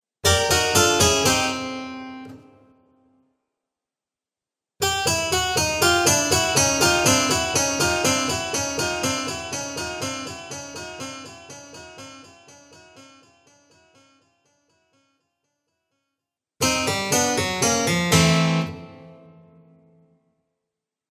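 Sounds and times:
cartoon harpsichord fail music: 0.2 - 2.4, 4.8 - 15.1, 16.6 - 19.5.

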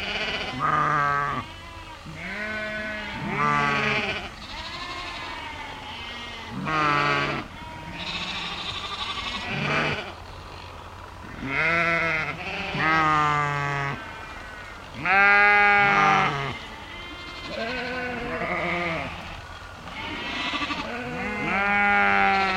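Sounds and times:
sheep and lambs bleating: 0.0 - 10.2, 11.2 - 22.5
steady low hum: 0.0 - 22.5.

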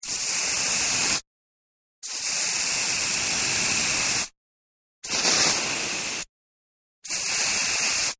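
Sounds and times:
household aerosol can spraying: 0.0 - 1.2, 2.1 - 4.3, 5.0 - 6.3, 7.0 - 8.1.

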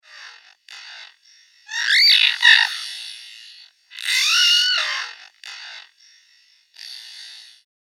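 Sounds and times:
science fiction alien being tortured: 1.7 - 2.8, 4.0 - 5.1.

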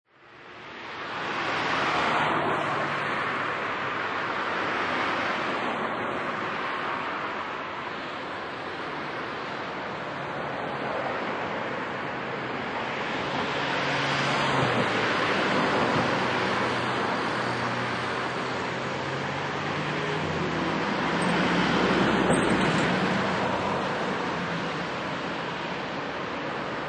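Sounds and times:
medium to heavy night traffic with cars driving by: 0.6 - 26.8.

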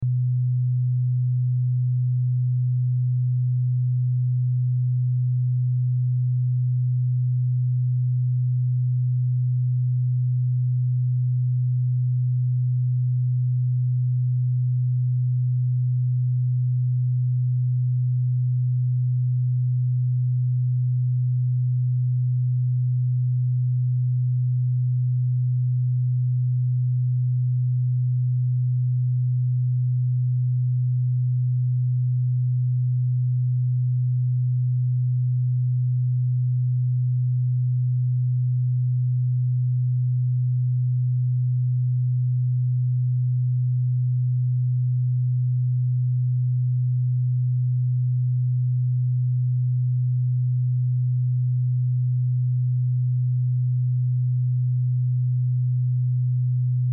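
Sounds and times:
125Hz sine wave test tone at -18dB: 0.0 - 56.9.

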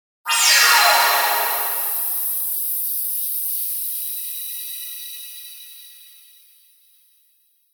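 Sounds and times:
meteor twinkle fly-by swell synth: 0.3 - 2.7.

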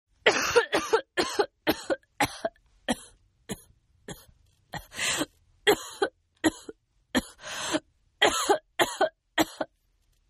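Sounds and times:
sick woman coughing: 0.3 - 4.9, 5.7 - 7.4, 8.2 - 9.7.

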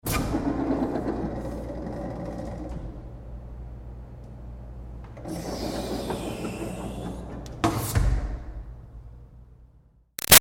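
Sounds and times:
commercial metal pull door on hinge opening and closing: 0.0 - 3.4, 5.1 - 8.7.

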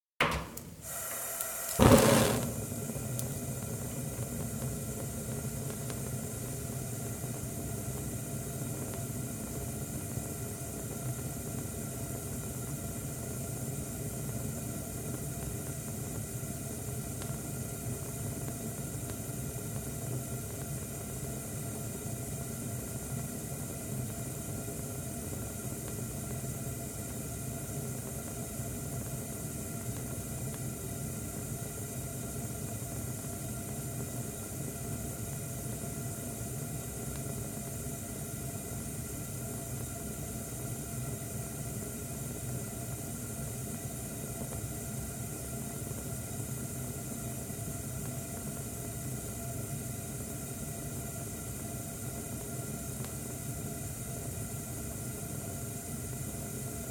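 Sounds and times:
gas stove being turned off: 0.2 - 9.1
gas stove with one ring lit burning: 0.2 - 56.8.

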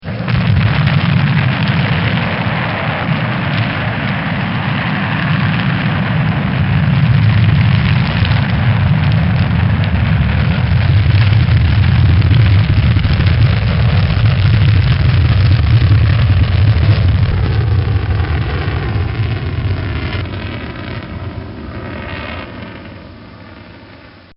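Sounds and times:
Space Shuttle lift-off: 0.0 - 24.3.

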